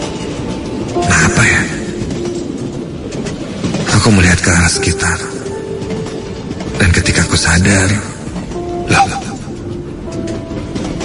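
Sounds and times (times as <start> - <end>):
train carriage rolling along the rails: 0.0 - 11.0
speech: 4.0 - 5.4, 6.8 - 8.1, 8.9 - 9.2.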